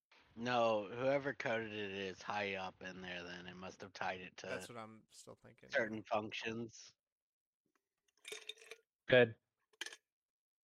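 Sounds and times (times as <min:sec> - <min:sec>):
speech: 0:00.4 - 0:07.0, 0:08.2 - 0:10.0
ice clinking against bottom of cup: 0:08.3 - 0:08.8.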